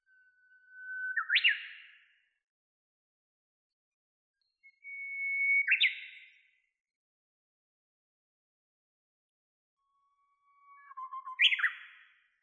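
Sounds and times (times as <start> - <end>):
Japanese bush warbler song: 4.6 - 6.4, 10.6 - 12.1.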